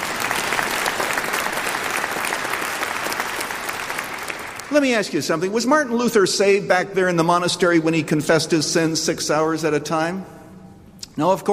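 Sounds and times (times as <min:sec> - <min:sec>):
large group applauding: 0:00.0 - 0:05.0
speech: 0:04.7 - 0:10.4, 0:11.2 - 0:11.5.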